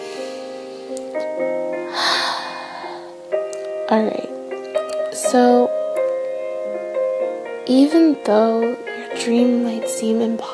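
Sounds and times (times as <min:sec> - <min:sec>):
steady music: 0:00.0 - 0:10.5
deep breath drawn and let out: 0:01.9 - 0:03.2
speech: 0:03.9 - 0:04.3, 0:05.3 - 0:05.8, 0:07.7 - 0:10.5.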